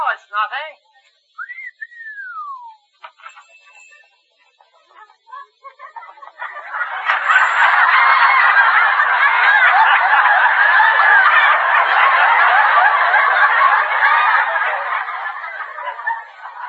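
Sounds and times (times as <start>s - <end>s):
man whistling a tune: 1.4s - 2.9s
laughter: 3.0s - 16.6s.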